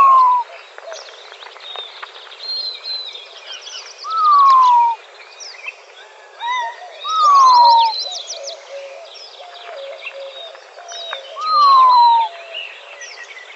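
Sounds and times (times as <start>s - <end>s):
Montezuma quail descending whistle in Arizona: 0.0s - 0.4s, 4.1s - 5.0s, 7.1s - 7.9s, 11.4s - 12.3s
chorus of other birds chirping and trilling in Arizona: 0.0s - 13.5s.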